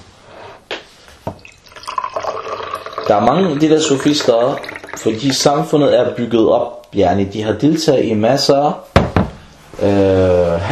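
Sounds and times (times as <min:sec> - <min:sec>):
liquid poured into a cup: 0:01.3 - 0:05.7
speech: 0:03.1 - 0:08.9, 0:09.8 - 0:10.7.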